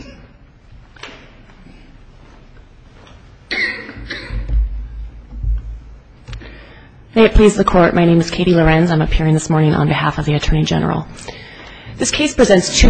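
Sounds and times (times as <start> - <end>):
person coughing: 0.0 - 0.4, 3.5 - 4.6
speech: 7.2 - 11.4, 12.0 - 12.8.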